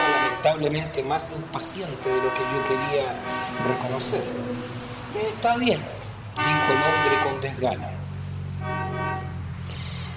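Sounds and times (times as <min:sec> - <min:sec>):
vehicle horn blaring: 0:00.0 - 0:00.7, 0:02.0 - 0:05.0, 0:06.3 - 0:07.6, 0:08.6 - 0:09.5
constant low engine rumble: 0:00.0 - 0:10.1
speech: 0:00.5 - 0:08.0.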